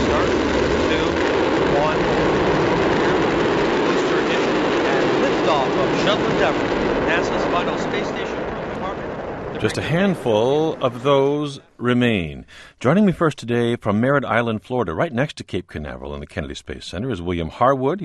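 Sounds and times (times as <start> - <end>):
space shuttle engines roaring during nighttime launch: 0.0 - 11.8
speech: 6.4 - 8.3, 9.6 - 18.0.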